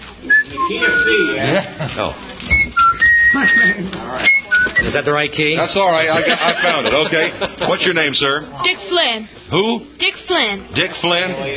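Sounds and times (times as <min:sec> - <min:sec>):
voices and chatter: 0:00.0 - 0:11.5
man whistling an old familiar tune: 0:00.3 - 0:01.4, 0:02.5 - 0:04.9
speech: 0:00.7 - 0:02.6, 0:03.3 - 0:11.5
laughter: 0:01.1 - 0:02.2, 0:03.2 - 0:04.3, 0:06.0 - 0:08.1.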